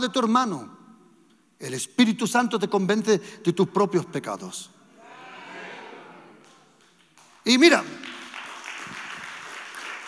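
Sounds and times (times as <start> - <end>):
speech: 0.0 - 0.8, 1.6 - 4.8, 7.4 - 8.1
audience applauding during a sermon: 8.0 - 10.0.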